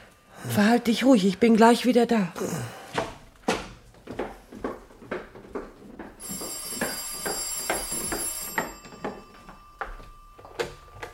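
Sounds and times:
speech: 0:00.4 - 0:02.8
thumping footsteps: 0:02.9 - 0:11.1
telephone bell ringing: 0:06.2 - 0:11.1.

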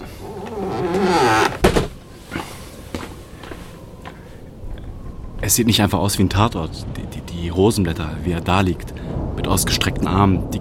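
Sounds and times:
door creaking and shutting with a solid thud: 0:00.0 - 0:02.0
soft footsteps: 0:00.0 - 0:04.3
speech: 0:05.5 - 0:10.5.

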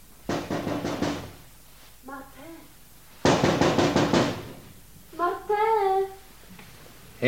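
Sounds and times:
knocking on a window: 0:00.3 - 0:01.4, 0:03.2 - 0:04.6.

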